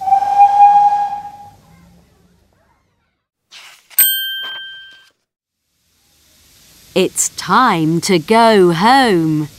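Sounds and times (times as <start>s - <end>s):
steam train whistle: 0.0s - 1.6s
bell-like ding: 4.0s - 5.1s
speech: 7.0s - 9.5s.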